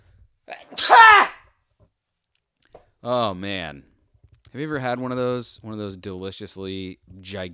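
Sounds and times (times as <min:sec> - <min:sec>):
speech: 0:00.5 - 0:01.3, 0:03.0 - 0:03.9, 0:04.5 - 0:07.5
person sneezing loudly: 0:00.5 - 0:01.4.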